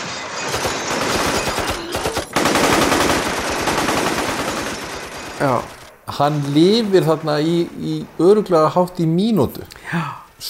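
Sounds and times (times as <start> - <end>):
sustained machine gun fire at houses and vehicles: 0.4 - 8.6
speech: 5.4 - 10.4.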